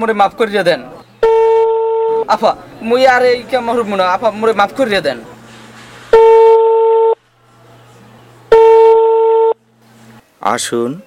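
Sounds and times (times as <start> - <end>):
speech: 0.0 - 1.0, 2.3 - 5.3, 10.4 - 11.0
telephone ringback tone on an outgoing call: 1.2 - 2.2, 6.1 - 7.2, 8.5 - 9.6.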